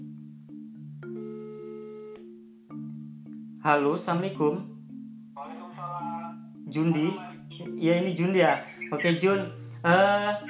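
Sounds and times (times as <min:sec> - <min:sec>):
phone ringing tone over the line as a call is placed to a shop: 0:01.0 - 0:02.4, 0:05.4 - 0:09.5
speech: 0:03.6 - 0:04.8, 0:06.7 - 0:10.4.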